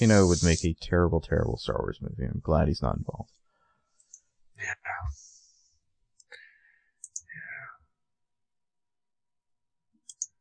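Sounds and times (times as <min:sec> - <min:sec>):
speech: 0:00.0 - 0:03.4, 0:04.6 - 0:05.3
computer mouse clicks while clicking through pictures: 0:07.0 - 0:07.3, 0:10.0 - 0:10.3.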